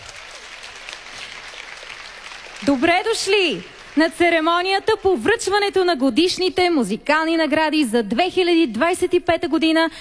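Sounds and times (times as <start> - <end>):
audience applause at a music awards ceremony: 0.0 - 5.3
speech: 2.6 - 9.9.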